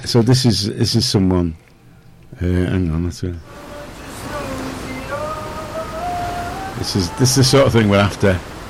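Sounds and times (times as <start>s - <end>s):
speech: 0.0s - 1.6s, 2.4s - 3.6s, 6.8s - 8.5s
faint tonal hums: 0.0s - 8.6s
shower running with spraying water: 3.4s - 8.6s.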